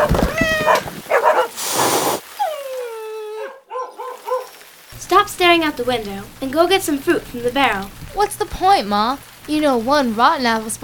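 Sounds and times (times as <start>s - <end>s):
cat harsh hiss: 0.0s - 2.4s
cats yowling with long drawn-out meows: 0.0s - 4.6s
dogs barking and whimpering: 0.0s - 4.7s
speech: 5.5s - 10.8s.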